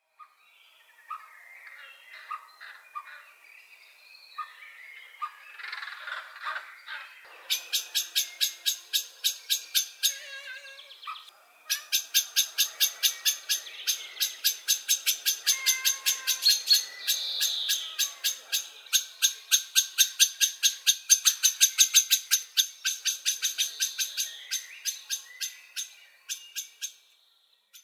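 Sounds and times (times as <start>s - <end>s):
bird calls: 0.2s - 27.8s
blackbird calling: 4.4s - 27.1s
cat: 10.0s - 11.9s, 15.4s - 16.8s.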